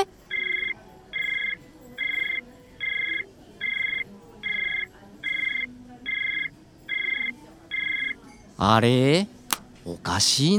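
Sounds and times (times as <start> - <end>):
telephone ringing tone on an unanswered call to a mobile phone: 0.0 - 8.2
speech: 8.6 - 10.5.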